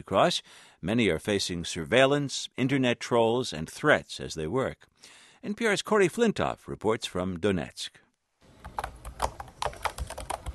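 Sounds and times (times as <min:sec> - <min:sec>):
speech: 0:00.0 - 0:08.0
fingers typing on a computer keyboard: 0:08.6 - 0:10.5.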